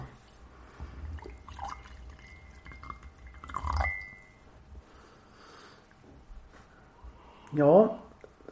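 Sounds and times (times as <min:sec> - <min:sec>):
tea pouring into a cup: 0:00.8 - 0:04.4
faint glassy ring: 0:01.2 - 0:04.5
speech: 0:07.6 - 0:08.0.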